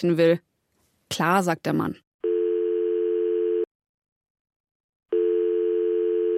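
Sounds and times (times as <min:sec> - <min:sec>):
speech: 0:00.0 - 0:00.5, 0:01.1 - 0:02.0
mobile phone call ringing tone of long electronic beeps: 0:02.2 - 0:03.7, 0:05.1 - 0:06.3.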